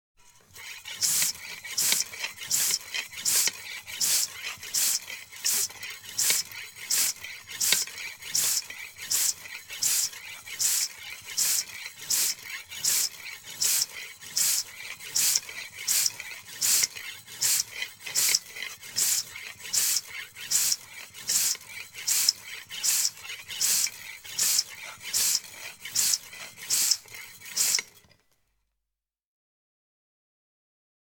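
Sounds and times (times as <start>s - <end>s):
bicycle pump: 0.2s - 28.3s.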